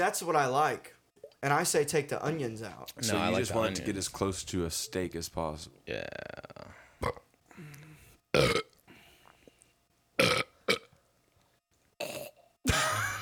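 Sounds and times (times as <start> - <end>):
speech: 0.0 - 7.7, 8.4 - 8.6
faint mouth noises: 5.8 - 8.2
person burping: 5.9 - 8.8, 10.2 - 10.9, 12.0 - 13.1.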